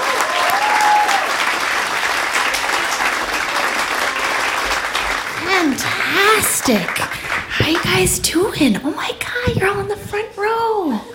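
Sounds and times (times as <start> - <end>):
large audience applause: 0.0 - 8.4
speech: 6.6 - 11.1.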